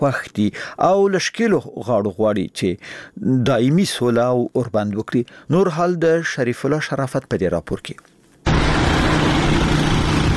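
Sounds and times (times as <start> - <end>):
speech: 0.0 - 8.1
motorcycle and car engines roaring: 8.5 - 10.3.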